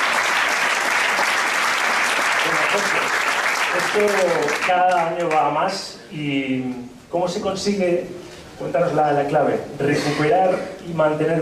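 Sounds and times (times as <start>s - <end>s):
audience applause: 0.0s - 5.1s
speech: 2.8s - 11.4s.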